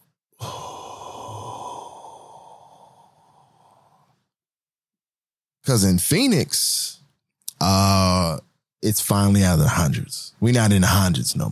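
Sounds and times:
long sigh-like breath: 0.4s - 4.3s
speech: 5.7s - 7.0s, 7.6s - 11.5s.

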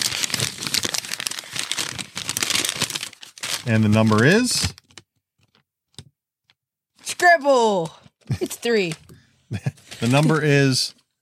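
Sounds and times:
sheet of paper crinkling and rustling: 0.0s - 5.6s, 8.4s - 10.8s
speech: 3.7s - 4.8s, 7.4s - 11.0s.

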